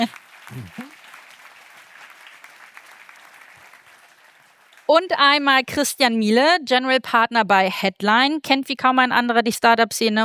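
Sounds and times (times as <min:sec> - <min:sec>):
speech: 0:00.0 - 0:00.8, 0:04.9 - 0:10.2
audience clapping: 0:00.0 - 0:05.2.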